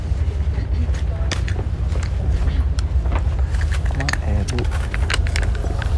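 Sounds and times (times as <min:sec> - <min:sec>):
heavy engine rumble of an old ferry docking: 0:00.0 - 0:05.9
people talking: 0:00.4 - 0:02.7, 0:03.9 - 0:04.8
clanks: 0:01.2 - 0:05.9.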